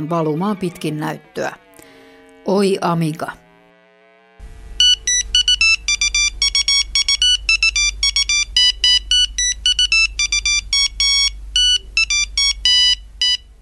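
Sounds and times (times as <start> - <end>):
speech: 0.0 - 1.6, 2.4 - 3.4
PC speaker beeper playing a bouncy square-wave polka melody: 0.0 - 1.7, 2.4 - 13.6
low hum: 0.0 - 13.6.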